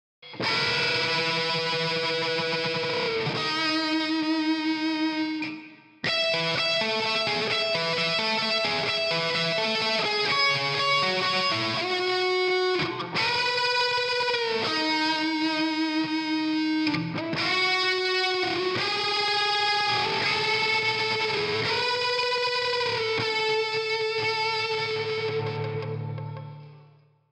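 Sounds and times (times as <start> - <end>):
lead solo: 0.3 - 26.6.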